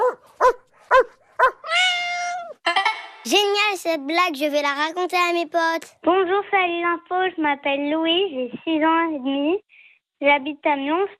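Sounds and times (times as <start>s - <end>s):
dog barking: 0.0s - 1.7s
long high wavering cry: 1.6s - 2.6s
speech: 3.3s - 11.1s.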